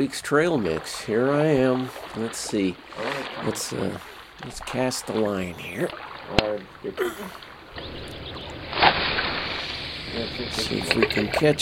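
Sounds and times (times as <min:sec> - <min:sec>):
speech: 0:00.0 - 0:08.2, 0:10.1 - 0:11.6
wind: 0:00.0 - 0:11.6
motorboat engines putt-putting on a pond: 0:00.6 - 0:11.6
voice: 0:05.4 - 0:05.9.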